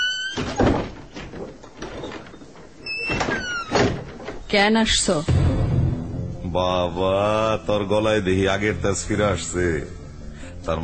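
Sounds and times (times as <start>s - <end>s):
door being opened: 0.0s - 4.7s
dull thunks and rattling scraping bursts of door: 0.2s - 4.7s
speech: 4.5s - 5.4s, 6.5s - 10.0s, 10.6s - 10.8s.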